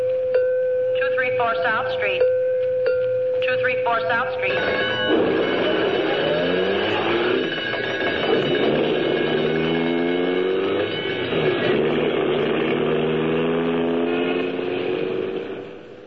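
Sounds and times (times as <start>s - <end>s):
rumbling city street traffic: 0.0s - 16.0s
speech: 1.4s - 2.4s, 3.4s - 5.7s
ambulance siren wailing: 3.3s - 16.0s
old ambulance engine roaring: 3.4s - 16.0s.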